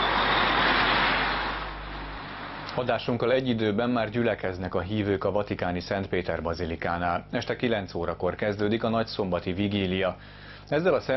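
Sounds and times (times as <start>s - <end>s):
heavy vehicles rumbling past: 0.0s - 2.8s
steady dense roar of road traffic: 0.0s - 2.8s
speech: 2.8s - 11.1s.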